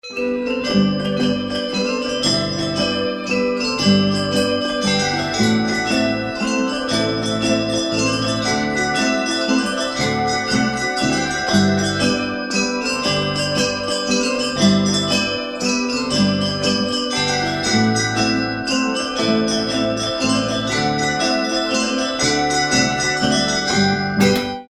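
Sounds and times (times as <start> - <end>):
bells: 0.0 - 24.6
mazurka music: 0.0 - 24.6.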